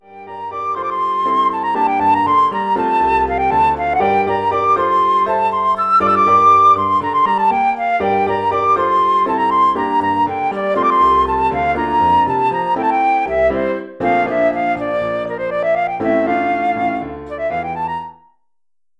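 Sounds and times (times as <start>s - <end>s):
flute solo over PA: 0.0s - 18.4s.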